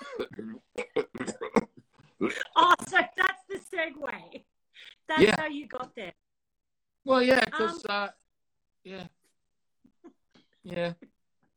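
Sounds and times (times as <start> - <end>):
person imitating a cat's retching vomit-like cough from flu: 0.0 - 3.2, 5.1 - 6.0
speech: 5.2 - 6.1, 7.1 - 8.2, 8.8 - 9.1, 10.7 - 11.0.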